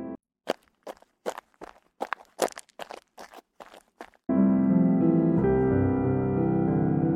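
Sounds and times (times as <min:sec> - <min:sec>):
crunchy footsteps of people walking: 0:00.4 - 0:04.3
music: 0:04.3 - 0:07.1.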